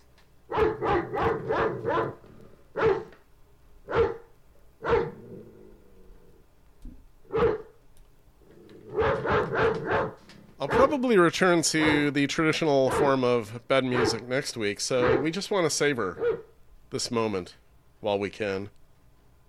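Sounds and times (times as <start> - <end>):
dog barking: 0.5 - 2.2, 2.8 - 3.2, 3.9 - 5.2, 7.3 - 7.8, 8.9 - 10.9, 12.9 - 13.2, 13.9 - 14.3, 15.0 - 15.4, 16.1 - 16.5
speech: 11.0 - 18.8.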